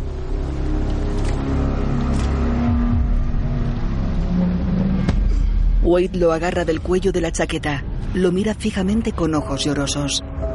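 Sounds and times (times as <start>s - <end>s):
car engine roaring while ramming another vehicle: 0.0s - 6.6s
speech: 5.9s - 10.4s.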